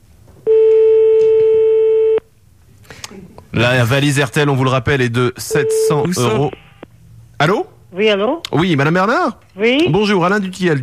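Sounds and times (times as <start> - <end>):
telephone call ringing on the line: 0.5 - 2.2, 5.5 - 6.5
speech: 3.6 - 6.7, 7.4 - 10.8.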